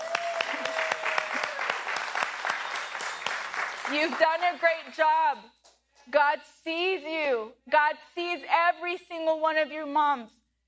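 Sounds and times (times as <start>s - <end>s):
steady brisk hand clapping: 0.0s - 4.9s
soft applause: 0.0s - 5.3s
speech: 3.9s - 10.4s.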